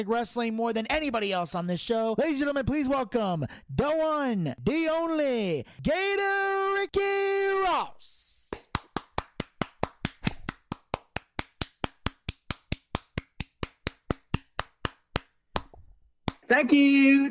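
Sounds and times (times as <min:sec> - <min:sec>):
speech: 0:00.0 - 0:08.3, 0:16.5 - 0:17.2
sharp evenly spaced hand claps in a mechanical rhythm: 0:08.4 - 0:16.5.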